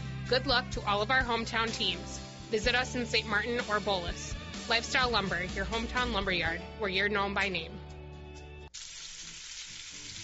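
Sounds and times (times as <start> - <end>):
speech: 0.3 - 7.8
pork sizzling as it cooks: 8.7 - 10.2.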